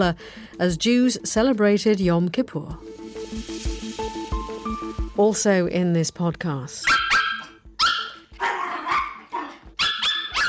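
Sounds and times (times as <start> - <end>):
speech: 0.0 - 3.5, 5.2 - 7.0
dog barking: 6.8 - 10.4.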